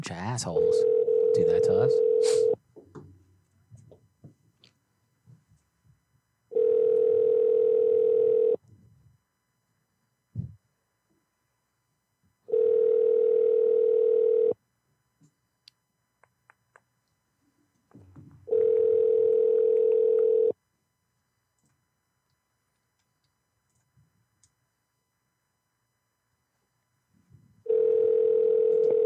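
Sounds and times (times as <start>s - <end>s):
speech: 0.0s - 2.4s
telephone ringback tone while a call to a hotel connects: 0.6s - 2.6s, 6.5s - 8.6s, 12.5s - 14.6s, 18.5s - 20.6s, 27.7s - 29.0s.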